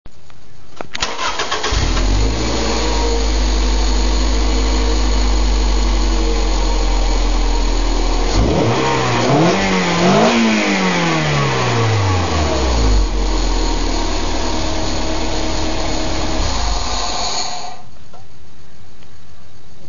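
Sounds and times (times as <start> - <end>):
dual exhaust: 1.5 - 17.0.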